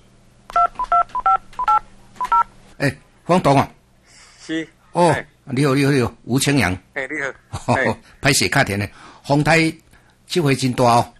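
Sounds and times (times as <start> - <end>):
telephone keypad tones as a number is dialed: 0.6 - 2.4
speech: 2.8 - 3.8, 4.5 - 11.1.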